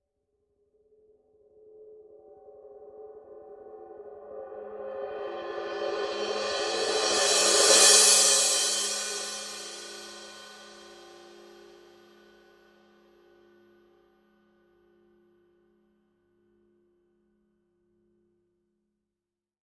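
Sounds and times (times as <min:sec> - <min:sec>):
16-inch thin crash cymbal roll: 0:05.4 - 0:12.1.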